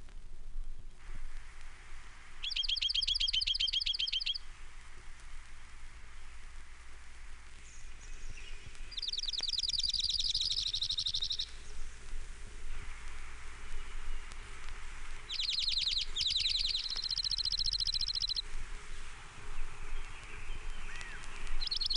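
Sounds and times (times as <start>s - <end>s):
steady hiss of noise: 0.0s - 21.9s
Oregon Junco singing rapid even trills: 2.4s - 4.5s, 8.4s - 11.6s, 15.3s - 18.4s, 20.8s - 21.9s.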